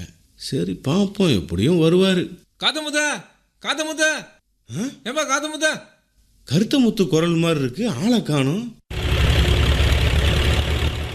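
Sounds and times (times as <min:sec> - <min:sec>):
speech: 0:00.4 - 0:05.9, 0:06.5 - 0:08.8
tractor loaded with straw bales idling: 0:08.9 - 0:11.1.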